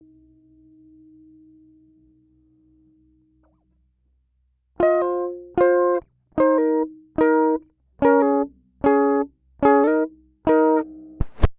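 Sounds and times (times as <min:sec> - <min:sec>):
clean guitar: 0:04.8 - 0:11.5.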